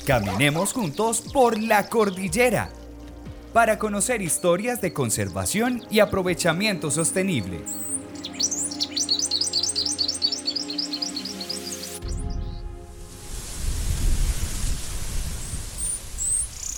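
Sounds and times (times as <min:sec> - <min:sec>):
speech: 0:00.0 - 0:02.8, 0:03.6 - 0:08.4
Antioquia brushfinch singing in the mountains of northern Antioquia: 0:00.0 - 0:12.7
steady hiss: 0:12.9 - 0:16.7.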